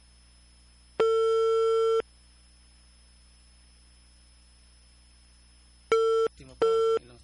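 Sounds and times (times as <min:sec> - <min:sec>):
telephone line tones on an unanswered call to a landline: 0:01.0 - 0:02.0, 0:05.9 - 0:07.2.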